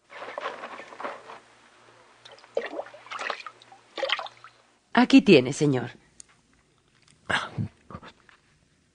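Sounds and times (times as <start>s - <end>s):
water pouring from a clay jug: 2.2s - 4.6s
speech: 5.0s - 6.0s.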